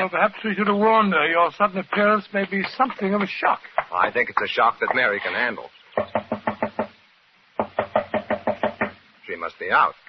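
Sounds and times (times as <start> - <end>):
speech: 0.0 - 6.2, 9.3 - 10.0
sharp knocks on a wooden door: 6.0 - 7.0, 7.6 - 9.0.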